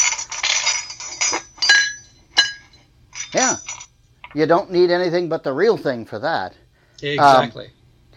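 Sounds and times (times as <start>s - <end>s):
breakfast dishes and cutlery clattering around a table: 0.0s - 3.9s
china and metal clinking together: 0.0s - 4.4s
speech: 4.4s - 7.8s.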